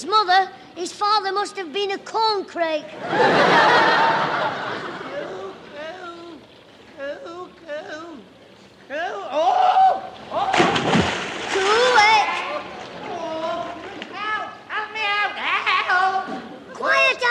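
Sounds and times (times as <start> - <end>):
speech: 0.0 - 4.9
rush of churning water: 1.9 - 17.2
snickering laughter: 2.9 - 6.0, 15.3 - 16.7
excited voices: 2.9 - 6.4, 8.9 - 10.7, 11.5 - 17.2
person falling into shallow water: 10.2 - 14.2.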